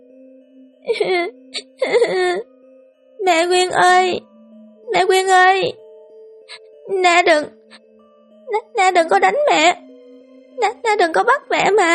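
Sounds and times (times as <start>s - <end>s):
speech: 0.8s - 1.6s, 3.4s - 4.3s, 4.9s - 5.8s, 6.5s - 7.6s, 8.5s - 9.8s, 10.6s - 11.9s
weak sick little girl wailing and crying: 0.9s - 2.4s.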